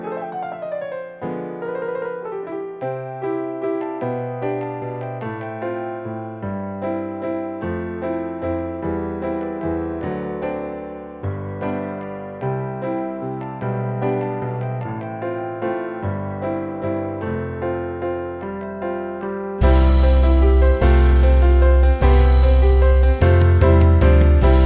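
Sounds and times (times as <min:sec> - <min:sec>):
piano playing: 0:00.0 - 0:24.6.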